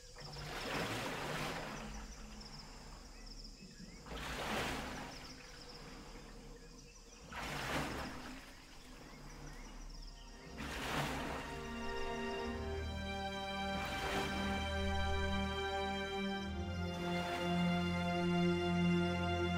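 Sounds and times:
faint insect-like chirps: 0.0 - 12.8
river water washing past a gliding boat: 0.0 - 19.5.

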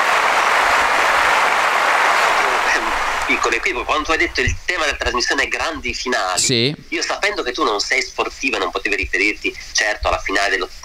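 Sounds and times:
crowd applause: 0.0 - 3.5
speech: 3.3 - 10.8.

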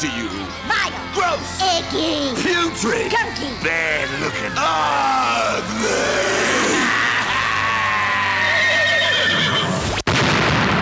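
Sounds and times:
speech: 0.0 - 6.5
horse neighing: 4.8 - 10.0
brief burst of noise: 9.6 - 10.8.

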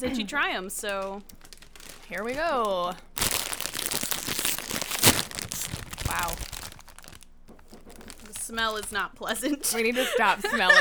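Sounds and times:
speech: 0.0 - 1.5, 2.1 - 3.3, 6.1 - 6.5, 8.5 - 10.8
snack bag crinkling as it is pulled open: 0.4 - 10.8
snack bag tearing: 1.0 - 9.0
laughter: 9.5 - 10.8.

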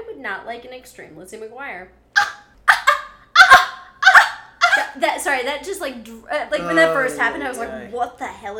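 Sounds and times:
speech: 0.2 - 2.0, 4.9 - 8.5
voice letting out weird high-pitched barking yelps: 2.2 - 4.9.

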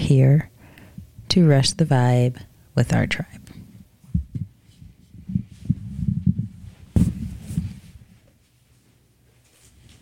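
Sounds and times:
speech: 0.1 - 0.5, 1.3 - 3.4
chair knocking and scraping against a wall and table: 4.1 - 8.0.

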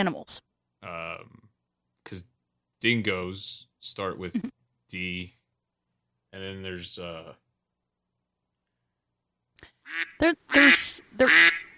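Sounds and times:
speech: 0.0 - 1.4, 2.1 - 5.4, 6.3 - 7.4, 9.9 - 11.7
duck quacking: 9.9 - 11.7.

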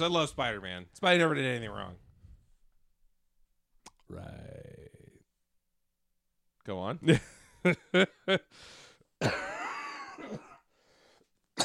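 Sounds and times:
speech: 0.0 - 2.0, 4.1 - 4.6, 6.6 - 9.5
raspy breath: 8.5 - 9.1, 10.7 - 11.3
person coughing: 9.2 - 10.7.

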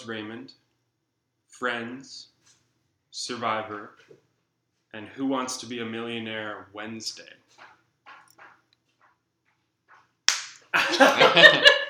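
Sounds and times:
speech: 0.0 - 0.6, 1.5 - 2.3, 3.1 - 4.2, 4.9 - 7.7, 10.8 - 11.8
sharp slap: 10.3 - 10.7
laughter: 10.8 - 11.8.

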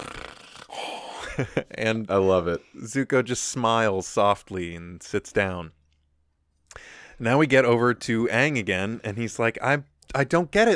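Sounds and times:
comical exaggerated snore: 0.0 - 1.3
speech: 1.4 - 5.8, 6.8 - 10.7.

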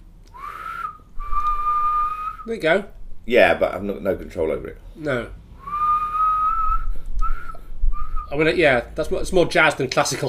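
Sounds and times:
person whistling through pursed lips: 0.3 - 2.5, 5.6 - 8.3
speech: 2.4 - 5.4, 8.3 - 10.2.

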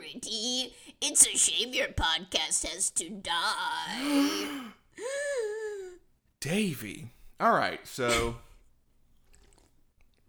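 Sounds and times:
speech: 0.1 - 5.2, 6.4 - 8.4
person sipping a drink: 9.1 - 10.2
soft slurps and swallows: 9.1 - 10.2.

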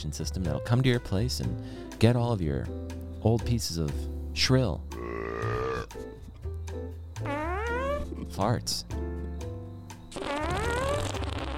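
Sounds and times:
speech: 0.0 - 5.2, 8.3 - 9.0
comic fart sounds: 7.2 - 8.1, 10.1 - 11.5.

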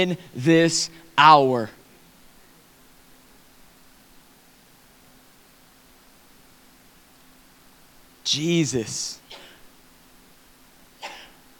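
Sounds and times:
speech: 0.0 - 1.8, 8.3 - 9.4
person sneezing: 9.2 - 9.6, 11.0 - 11.4.

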